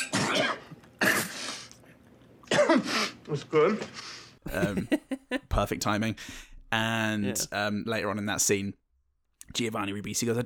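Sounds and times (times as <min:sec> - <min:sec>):
person imitating coughing and spluttering: 0:00.0 - 0:01.8, 0:02.4 - 0:03.2
speech: 0:02.8 - 0:08.8, 0:09.5 - 0:10.4
laughter: 0:04.5 - 0:05.6
person gasping: 0:06.2 - 0:06.6.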